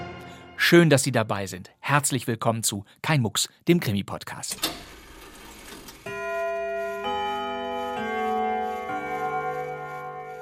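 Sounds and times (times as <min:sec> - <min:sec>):
speech: 0:00.7 - 0:05.0
clear ringing clock chime notes: 0:06.1 - 0:10.4
clock hands ticking: 0:06.1 - 0:10.4.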